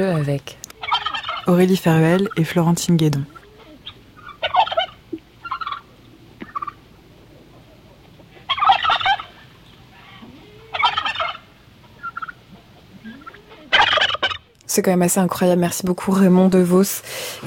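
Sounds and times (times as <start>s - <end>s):
speech: 0.0s - 0.6s, 1.5s - 3.4s, 14.8s - 17.4s
turkey gobbling: 0.0s - 1.6s, 3.3s - 14.5s.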